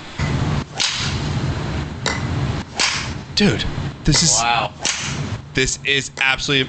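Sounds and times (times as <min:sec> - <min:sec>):
broadband noise: 0:00.0 - 0:06.6
low hum: 0:00.0 - 0:06.6
golf ball struck hard in a trick shot: 0:00.8 - 0:01.2, 0:02.8 - 0:03.2, 0:04.8 - 0:05.2
speech: 0:03.4 - 0:04.8, 0:05.6 - 0:06.6.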